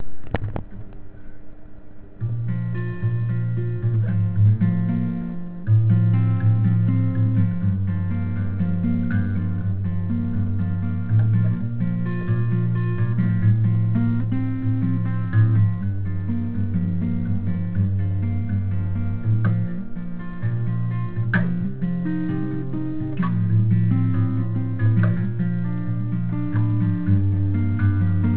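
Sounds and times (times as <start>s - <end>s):
guitar playing: 2.2s - 28.3s.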